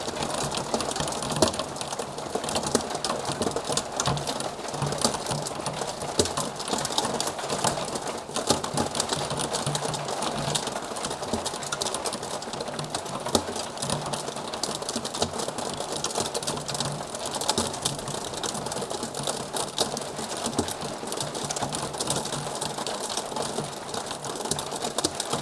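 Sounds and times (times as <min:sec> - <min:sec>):
rain in calm weather: 0:00.0 - 0:25.4.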